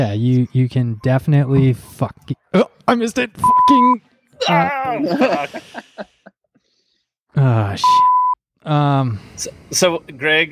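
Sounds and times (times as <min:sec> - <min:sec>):
speech: 0:00.0 - 0:06.2, 0:07.4 - 0:10.4
high-pitched censor bleep over a swear word: 0:03.4 - 0:03.8, 0:07.8 - 0:08.4
laughter: 0:04.4 - 0:06.4.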